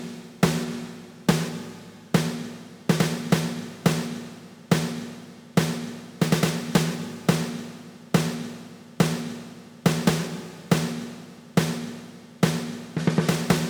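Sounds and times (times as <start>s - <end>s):
alien snare drum hit from a game: 0.0s - 7.6s, 8.2s - 13.6s.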